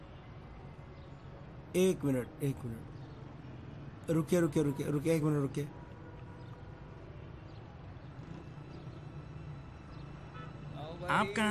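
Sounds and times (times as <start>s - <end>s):
street traffic rumble: 0.0s - 11.4s
speech: 1.7s - 3.0s, 4.0s - 5.8s, 11.1s - 11.4s.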